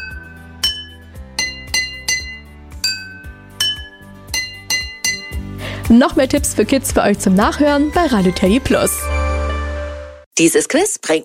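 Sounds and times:
egg spoons striking water-filled drinking glasses on a table: 0:00.0 - 0:05.5
speech: 0:05.9 - 0:09.1, 0:10.4 - 0:11.2.

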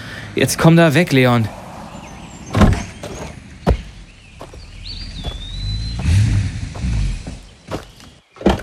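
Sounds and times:
police inspector's car engine rumbling as it pulls up: 0:00.0 - 0:08.6
speech: 0:00.4 - 0:01.6
car doors thunking and clicking: 0:02.5 - 0:04.0, 0:07.3 - 0:08.6.

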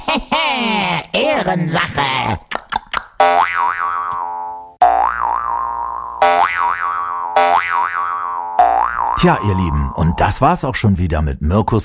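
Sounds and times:
speech: 0:00.2 - 0:00.7, 0:01.4 - 0:02.5, 0:09.2 - 0:11.8
jaw harp plucks: 0:02.5 - 0:10.4
cartoon-style boing sound effects for hopping played on a jaw harp: 0:03.2 - 0:10.3.

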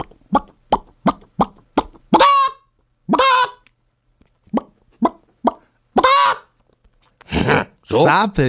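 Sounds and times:
person imitating chicken clucks: 0:00.0 - 0:03.6, 0:04.5 - 0:06.6
person imitating drawn-out chicken squawking calls: 0:01.8 - 0:03.6, 0:05.0 - 0:06.6
speech: 0:08.0 - 0:08.4.

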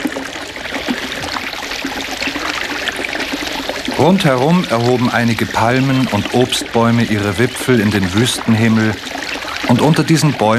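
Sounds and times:
spring water splashing like a small fountain: 0:00.0 - 0:10.5
speech: 0:04.0 - 0:10.5.

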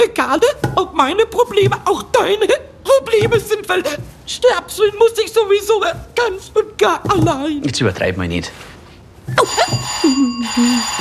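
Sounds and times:
speech: 0:00.0 - 0:08.7, 0:09.3 - 0:10.9
electric doorbell ringing at a house's front door: 0:09.4 - 0:10.9.

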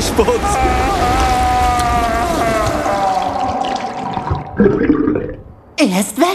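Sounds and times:
speech: 0:00.1 - 0:01.1, 0:05.9 - 0:06.3
person gargling water: 0:01.6 - 0:05.6.

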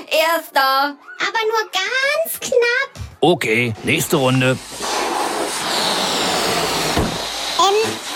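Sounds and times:
speech: 0:00.2 - 0:04.8
released balloon deflating in a balloon race: 0:03.7 - 0:08.1.

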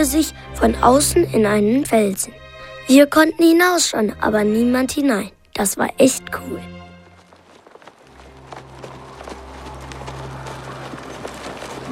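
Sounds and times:
speech: 0:00.0 - 0:06.8
horses' hooves clip-clopping: 0:06.6 - 0:11.8.

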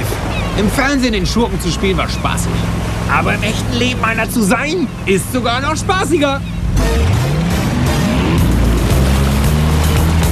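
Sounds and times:
motorboat engine roaring as it races toward a freighter: 0:00.0 - 0:10.3
speech: 0:00.6 - 0:07.2.

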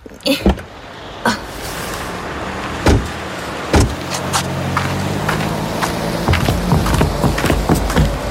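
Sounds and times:
low rumble of traffic or an idling engine: 0:00.0 - 0:08.2
car door being handled: 0:02.8 - 0:04.2, 0:06.2 - 0:08.2
clunks and thumps of someone climbing out of a parked car: 0:02.8 - 0:04.4, 0:05.3 - 0:08.2.

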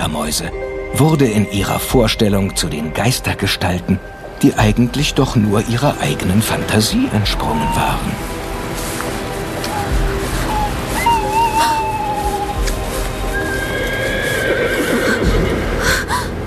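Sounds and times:
steady rushing noise: 0:00.0 - 0:16.4
speech: 0:00.1 - 0:08.4
horse whinnying: 0:13.3 - 0:15.6.

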